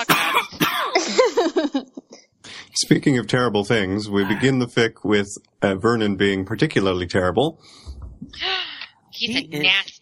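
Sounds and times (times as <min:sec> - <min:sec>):
loud harsh coughing fit: 0:00.0 - 0:01.0, 0:04.2 - 0:04.6
speech: 0:02.9 - 0:10.0.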